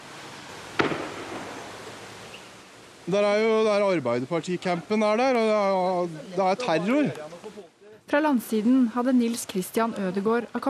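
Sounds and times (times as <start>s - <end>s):
hiss: 0.0s - 10.6s
gunshot crack during a shooting attack on an island youth camp: 0.8s - 1.7s
speech: 3.1s - 7.3s, 8.1s - 10.6s.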